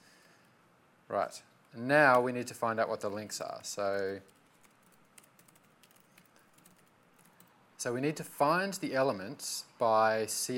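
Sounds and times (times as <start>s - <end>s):
speech: 1.1s - 4.4s, 7.8s - 10.5s
typing on a computer keyboard: 3.5s - 7.5s.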